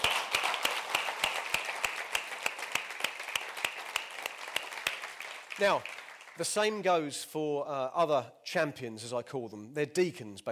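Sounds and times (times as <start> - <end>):
audience applause: 0.0 - 6.8
speech: 5.6 - 10.5.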